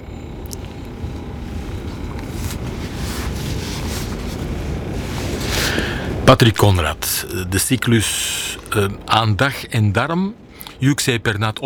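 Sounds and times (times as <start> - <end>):
steady wind blowing across the microphone: 0.0 - 8.8
speech: 6.3 - 11.6.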